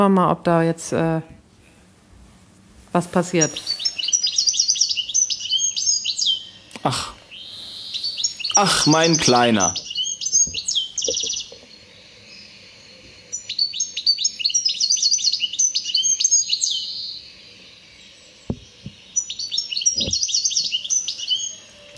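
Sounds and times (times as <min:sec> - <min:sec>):
speech: 0:00.0 - 0:01.4, 0:02.9 - 0:03.8, 0:06.8 - 0:07.2, 0:08.6 - 0:09.8
European goldfinch song played back from a recording: 0:03.0 - 0:21.9
sharp knocks: 0:18.5 - 0:19.0.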